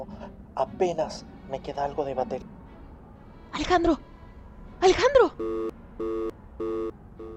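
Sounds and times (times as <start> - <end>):
speech: 0.0 - 2.6, 3.5 - 4.1, 4.8 - 6.7
mobile phone busy tone of short electronic beeps as a call is cut off: 5.4 - 7.3.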